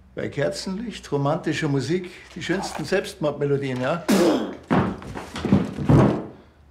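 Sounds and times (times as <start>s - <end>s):
speech: 0.2s - 4.7s
person falling over onto the floor with heavy dull thuds: 4.6s - 6.3s.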